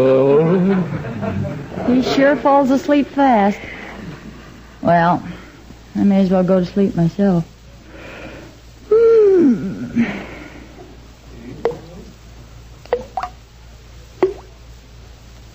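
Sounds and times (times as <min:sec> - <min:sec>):
laughter: 0:00.0 - 0:02.7
speech: 0:01.9 - 0:03.8, 0:04.8 - 0:05.4, 0:06.0 - 0:07.5, 0:09.4 - 0:10.3
descending sigh-like sound: 0:08.9 - 0:10.7
bathroom faucet dripping into water: 0:12.8 - 0:13.4, 0:14.2 - 0:14.5.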